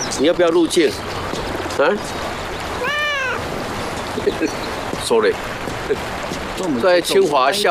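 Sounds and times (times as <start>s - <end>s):
speech: 0.2s - 1.2s, 1.8s - 2.2s, 4.3s - 7.6s
cat meowing on a Taiwanese university campus: 2.8s - 3.5s.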